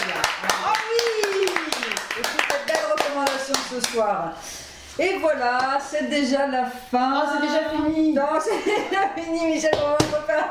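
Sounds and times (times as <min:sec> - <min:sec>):
small group of people clapping in a studio: 0:00.0 - 0:04.2
speech: 0:03.8 - 0:10.4.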